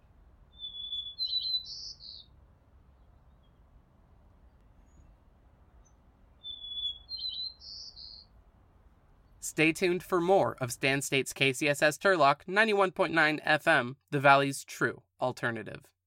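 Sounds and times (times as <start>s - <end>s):
faint low hum: 0.0s - 1.2s, 2.0s - 7.1s, 8.1s - 9.8s
white-crowned sparrow in a backyard singing whistled phrases with buzzy trills: 0.5s - 2.3s, 5.8s - 8.3s
speech: 9.5s - 16.0s.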